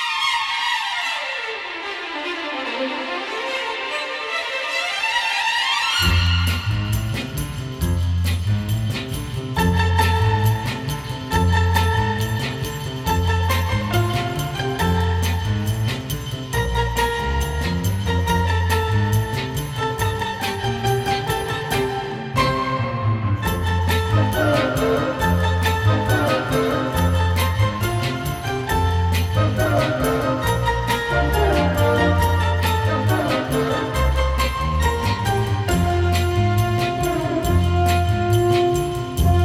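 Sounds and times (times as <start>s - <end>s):
strings playing: 0.2s - 39.3s.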